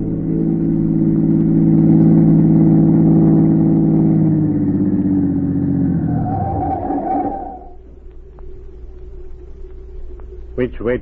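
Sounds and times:
car engine humming and winding down as the car pulls to a stop: 0:00.0 - 0:07.8
speech: 0:10.8 - 0:11.0.

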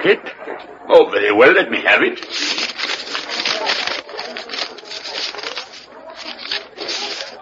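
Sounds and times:
speech: 0:00.0 - 0:02.6
paper crinkling and rustling as it is unfolded and handled: 0:02.2 - 0:07.3.

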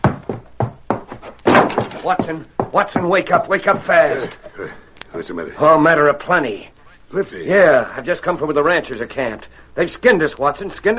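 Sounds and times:
wooden door being burst open: 0:01.4 - 0:02.2
speech: 0:02.0 - 0:10.9.

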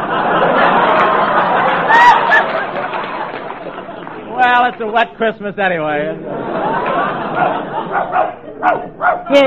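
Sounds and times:
laughter: 0:00.0 - 0:04.7, 0:06.0 - 0:09.1
speech: 0:04.5 - 0:06.8, 0:07.4 - 0:09.4
chatter over a narrow phone-like line: 0:07.3 - 0:09.4
dog barking: 0:07.4 - 0:09.4.

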